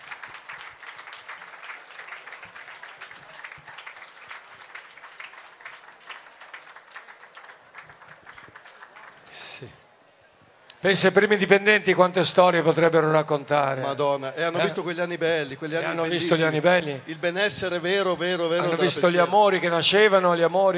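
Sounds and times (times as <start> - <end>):
audience applause for a business's first employees: 0.0 - 9.7
speech: 9.6 - 9.8, 10.8 - 20.7.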